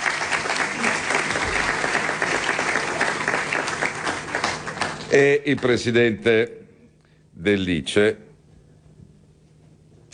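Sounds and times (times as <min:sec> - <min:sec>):
audience applause at a centenary book presentation: 0:00.0 - 0:05.4
speech: 0:05.1 - 0:06.6, 0:07.4 - 0:08.2.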